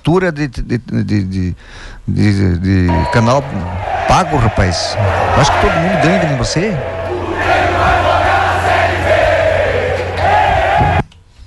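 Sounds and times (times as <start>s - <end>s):
speech: 0.0s - 8.0s
large football crowd chanting in unison: 2.9s - 11.0s.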